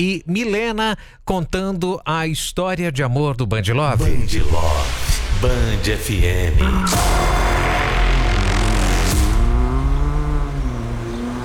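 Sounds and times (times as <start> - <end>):
speech: 0.0 - 7.4
car engine roaring: 5.2 - 11.4
car tires screeching as it brakes hard: 5.8 - 11.4.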